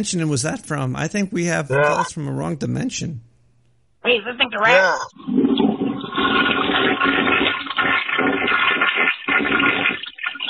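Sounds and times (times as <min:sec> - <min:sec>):
speech: 0:00.0 - 0:03.3, 0:04.0 - 0:09.8
toilet flushing heard over a phone line: 0:05.1 - 0:10.4.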